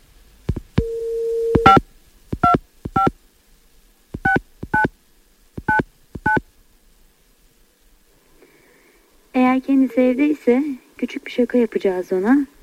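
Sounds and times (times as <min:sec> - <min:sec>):
steady telephone dial tone: 0:00.8 - 0:01.8
touch-tone beeps of a phone number being dialed: 0:00.8 - 0:01.8, 0:04.2 - 0:04.9, 0:05.7 - 0:06.4
speech: 0:09.6 - 0:12.5.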